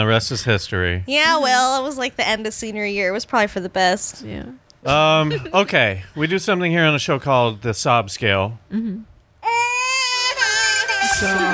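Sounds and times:
speech: 0.0s - 9.1s, 11.2s - 11.5s
baby crying: 9.4s - 11.5s.

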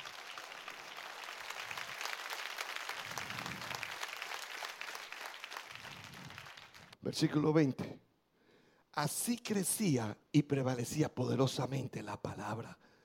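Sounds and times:
audience applause: 0.0s - 7.0s
speech: 7.0s - 8.0s, 9.0s - 12.9s.

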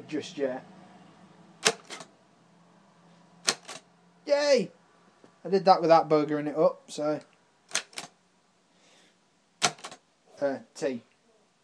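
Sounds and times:
speech: 0.1s - 0.8s, 4.3s - 4.8s, 5.4s - 7.3s, 10.4s - 11.1s
Braille writer keys typing a letter: 1.6s - 2.1s, 3.4s - 3.8s, 7.7s - 8.1s.

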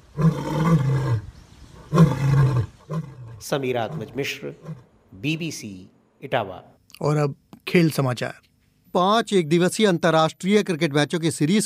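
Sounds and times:
lion roaring at the lion safari in Etawah India: 0.1s - 4.9s
speech: 3.4s - 11.6s.

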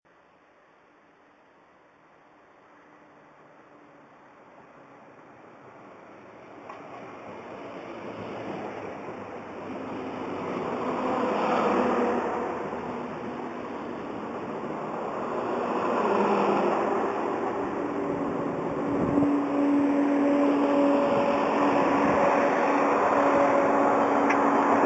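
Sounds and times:
diesel train: 0.6s - 24.8s.

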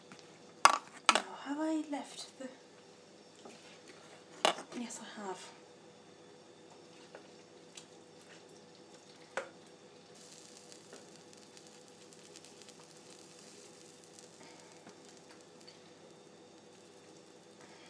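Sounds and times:
beans boiling in a pot on medium heat: 0.1s - 17.8s
speech: 1.8s - 2.7s, 4.8s - 5.6s.

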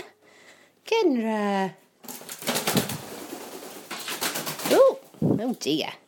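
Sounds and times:
speech: 1.0s - 1.8s, 5.4s - 6.0s
pet parrot wings fluttering in a kitchen: 2.0s - 4.9s.

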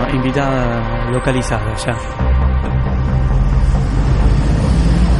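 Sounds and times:
speech: 0.2s - 2.7s
cars passing on a busy street: 2.2s - 5.1s.

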